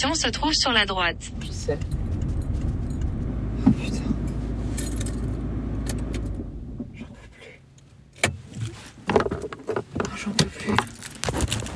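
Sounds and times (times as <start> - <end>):
speech: 0.0 - 2.0
car engine rumbling: 0.0 - 11.7.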